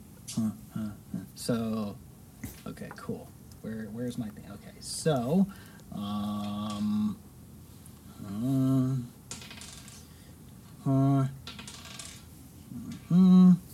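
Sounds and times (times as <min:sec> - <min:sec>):
speech: 0:00.4 - 0:02.0, 0:02.6 - 0:07.3, 0:08.2 - 0:09.2, 0:10.8 - 0:11.5
many dice clattering and rattling across a table: 0:09.3 - 0:10.0, 0:11.4 - 0:12.3.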